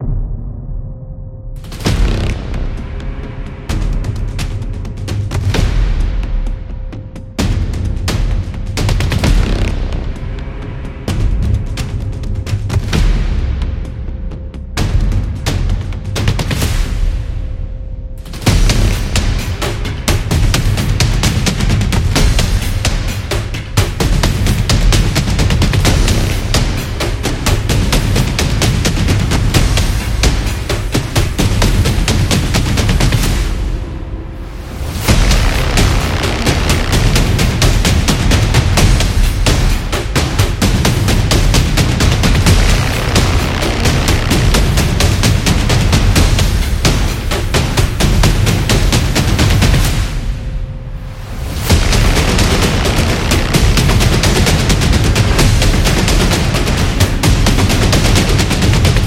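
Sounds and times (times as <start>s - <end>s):
military drums: 1.6s - 59.0s.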